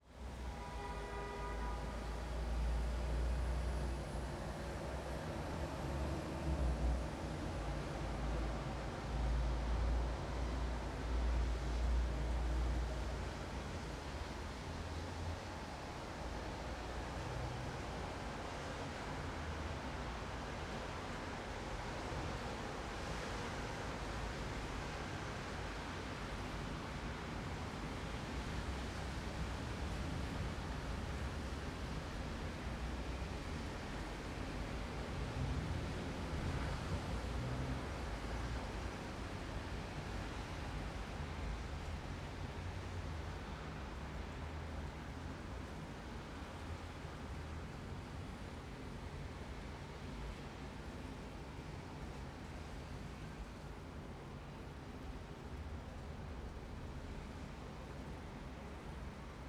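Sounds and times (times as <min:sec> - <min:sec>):
evening rain in an urban city: 0:00.0 - 0:59.4.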